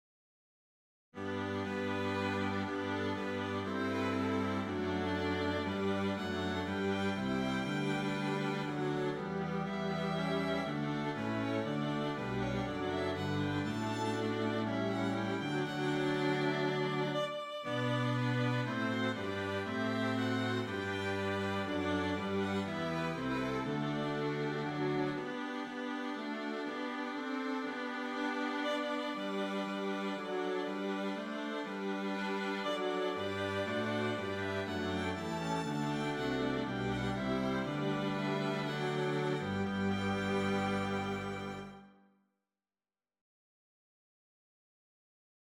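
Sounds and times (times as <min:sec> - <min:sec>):
strings playing a hymn: 0:01.2 - 0:41.9.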